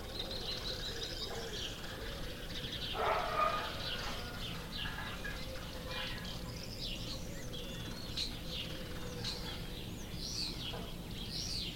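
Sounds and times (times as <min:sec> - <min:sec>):
small canary-like birds trilling and chirping: 0:00.0 - 0:11.7.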